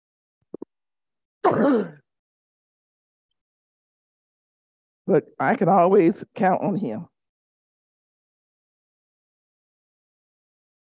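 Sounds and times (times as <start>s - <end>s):
rasping throat clearing from a tickle in the throat: 1.4s - 2.0s
speech: 1.4s - 2.0s, 5.1s - 7.1s.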